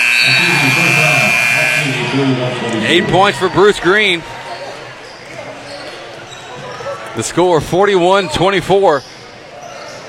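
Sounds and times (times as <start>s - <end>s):
end-of-quarter arena buzzer at a basketball game: 0.0s - 3.6s
basketball arena crowd noise: 0.0s - 10.0s
speech: 0.2s - 1.1s, 2.2s - 4.4s, 7.2s - 9.2s.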